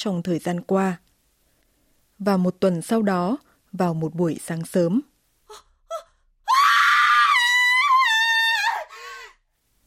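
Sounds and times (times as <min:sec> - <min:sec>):
speech: 0:00.0 - 0:01.1, 0:02.2 - 0:05.7
woman screaming in terror: 0:05.9 - 0:09.0
woman gasping: 0:08.9 - 0:09.4.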